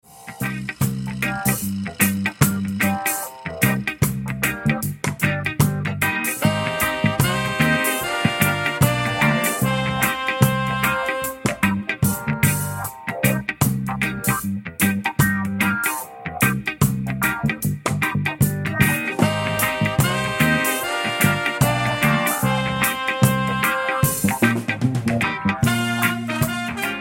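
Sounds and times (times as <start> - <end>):
reggae music ringtone: 0.1 - 26.9.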